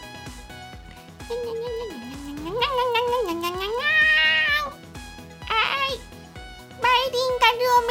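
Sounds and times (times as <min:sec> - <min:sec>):
soft rhythmic backing beat: 0:00.0 - 0:07.8
speech: 0:01.3 - 0:01.9
cat meowing: 0:01.6 - 0:04.8.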